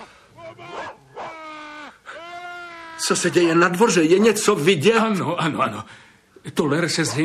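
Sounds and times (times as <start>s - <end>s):
dog barking: 0.0s - 1.4s
dog whimpering and whining while shut into a shed: 0.0s - 2.0s
speech: 3.0s - 7.2s.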